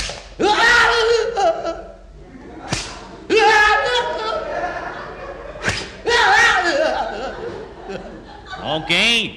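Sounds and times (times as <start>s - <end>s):
whip lashes cracking on a man's oil-covered bare back as punishment: 0.0s - 0.4s, 2.7s - 3.1s, 5.6s - 6.0s
man yelling in strain: 0.4s - 1.8s, 3.3s - 4.5s, 6.0s - 7.0s
laughter: 0.8s - 9.2s.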